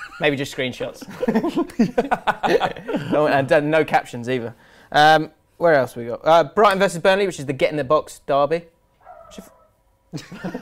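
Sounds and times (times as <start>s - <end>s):
laughter: 0.0s - 0.3s, 1.0s - 3.4s, 10.2s - 10.6s
speech: 0.2s - 8.7s, 9.3s - 10.6s
dog whining: 9.0s - 9.8s.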